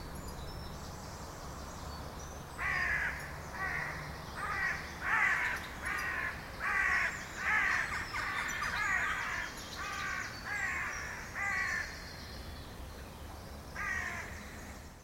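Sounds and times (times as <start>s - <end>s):
carrion crow Corvus corone cawing: 2.6s - 12.0s, 13.8s - 14.4s.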